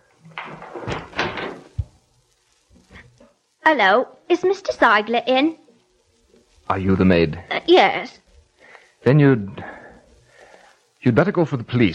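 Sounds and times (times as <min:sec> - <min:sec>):
rustling and scraping of handling at a door: 0:00.0 - 0:02.0
speech: 0:03.7 - 0:05.6, 0:06.7 - 0:08.2, 0:09.0 - 0:09.8, 0:11.0 - 0:11.9.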